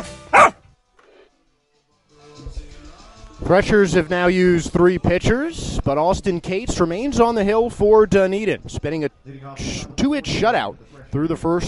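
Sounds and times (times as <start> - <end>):
dog barking: 0.0 - 0.6
speech: 3.4 - 11.6.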